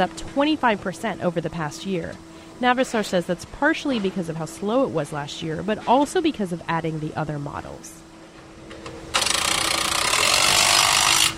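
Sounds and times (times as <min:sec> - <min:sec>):
speech: 0:00.0 - 0:08.1
truck factory assembly line machinery rattling: 0:09.1 - 0:11.3.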